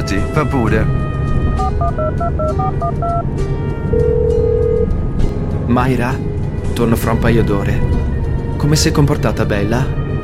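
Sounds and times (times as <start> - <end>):
constant loud rumble: 0.0 - 9.2
speech: 0.1 - 1.0, 1.8 - 5.0, 5.7 - 10.0
single longer steady telephone tone: 1.6 - 3.2, 3.9 - 4.9
telephone keypad tones dialing a call home: 1.8 - 3.2.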